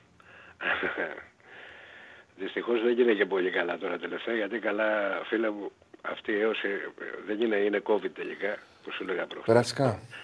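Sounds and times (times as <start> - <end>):
speech: 0.6 - 1.4, 2.4 - 10.2
phone caller's heavy wheezy breathing on a phone line: 1.4 - 2.3, 10.1 - 10.2.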